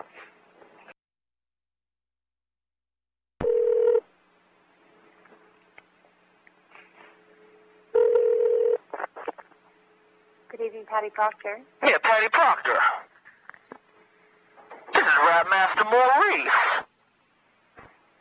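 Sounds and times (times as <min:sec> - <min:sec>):
telephone keypad tones dialing a cell phone number: 0:03.4 - 0:04.0, 0:08.0 - 0:08.8
speech: 0:10.9 - 0:13.1, 0:15.1 - 0:16.8.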